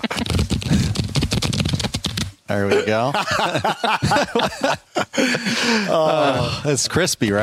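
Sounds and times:
deck of cards being shuffled on a table: 0.0s - 2.4s
speech: 2.5s - 7.4s
laughter: 2.7s - 6.7s.

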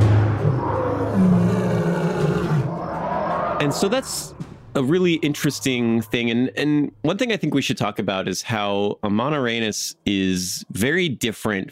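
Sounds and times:
lion roaring: 0.0s - 4.4s
speech: 3.6s - 11.7s.

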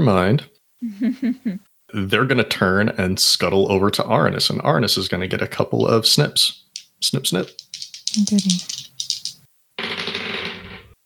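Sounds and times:
speech: 0.0s - 8.8s
dice rolling on a hard tabletop: 5.7s - 10.8s.

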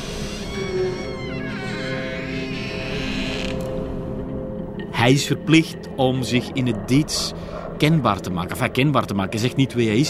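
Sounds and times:
wooden door creaking open: 0.0s - 3.9s
speech: 5.0s - 10.0s.

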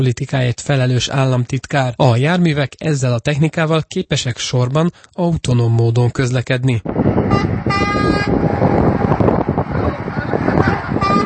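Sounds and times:
speech: 0.0s - 8.8s
heavy trucks in autonomous platoon convoy on M1 motorway near Lébény Hungary: 6.8s - 11.2s
truck air-horn toots: 7.1s - 9.2s, 10.6s - 11.2s.

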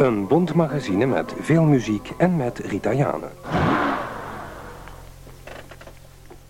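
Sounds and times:
speech: 0.1s - 3.6s
car engine rumbling and revving: 3.4s - 5.3s.

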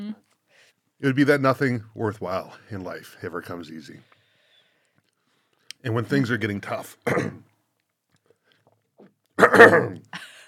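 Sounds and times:
speech: 1.0s - 4.1s, 5.8s - 7.5s, 9.4s - 10.4s
breathy exhale: 4.1s - 4.9s
person gulping while eating hot wings: 8.2s - 10.1s.

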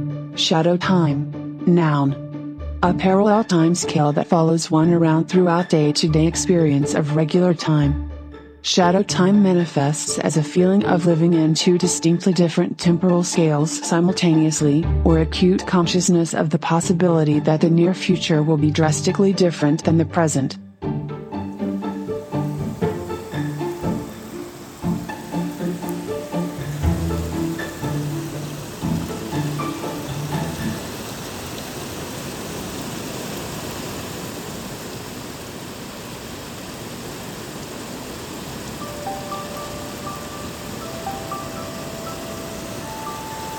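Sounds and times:
speech: 0.4s - 2.2s, 2.8s - 21.0s
heavy rain pouring down: 21.6s - 43.5s.

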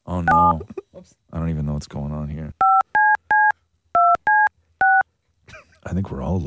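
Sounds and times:
speech: 0.2s - 2.6s, 5.9s - 6.4s
touch-tone telephone keypad beeps as a call is dialed: 2.6s - 5.0s.

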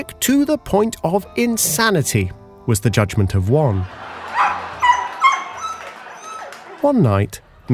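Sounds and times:
speech: 0.0s - 4.2s, 6.8s - 7.7s
laughter: 3.7s - 7.6s
dog barking at an intruder during a stage performance: 4.3s - 6.8s.

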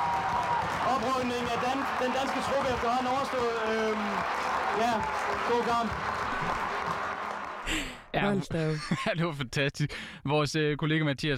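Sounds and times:
large football crowd cheering and shouting as Denmark beat Scotland: 0.0s - 8.0s
speech: 1.0s - 6.6s, 8.2s - 11.3s
laughter: 7.6s - 9.3s.

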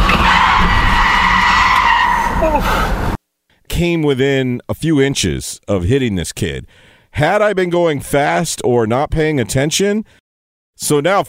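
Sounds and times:
tires skidding under hard braking: 0.0s - 3.2s
speech: 2.4s - 3.0s, 3.8s - 10.2s, 10.8s - 11.2s.

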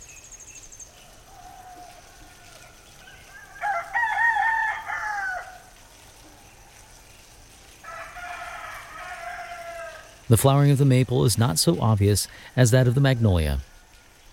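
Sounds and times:
rooster crowing: 1.1s - 5.7s, 7.8s - 10.2s
speech: 10.3s - 13.7s.

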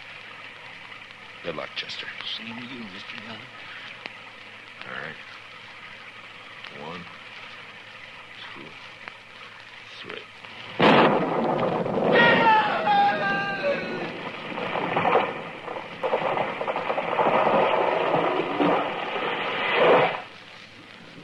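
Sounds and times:
speech: 1.4s - 3.8s, 4.8s - 5.4s, 6.7s - 7.2s, 8.6s - 8.9s, 10.0s - 10.3s
lightning striking a tree: 10.5s - 20.4s
thunder crash and rolling rumble: 10.8s - 20.2s.

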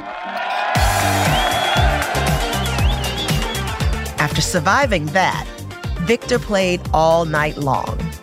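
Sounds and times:
packed nightclub crowd screaming and cheering: 0.0s - 4.2s
loud pounding dance music with thumping kick beat: 0.0s - 8.2s
shrill whistle-like tone: 1.1s - 3.7s
speech: 4.4s - 8.0s.

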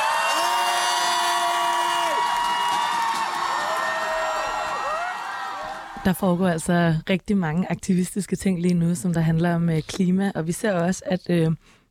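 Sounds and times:
large protest crowd shouting and cheering at Christiansborg: 0.0s - 6.4s
speech: 6.0s - 11.8s.

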